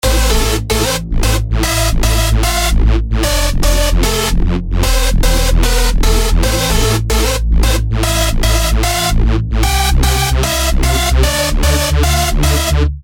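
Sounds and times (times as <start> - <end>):
dry hardstyle melody: 0.0 - 13.0.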